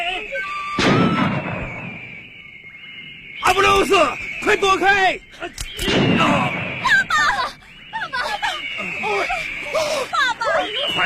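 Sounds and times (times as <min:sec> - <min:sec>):
gunshot sound effect in an audio drama: 0:00.8 - 0:02.3, 0:05.7 - 0:07.0
speech: 0:03.8 - 0:06.6
laughter: 0:07.1 - 0:11.0.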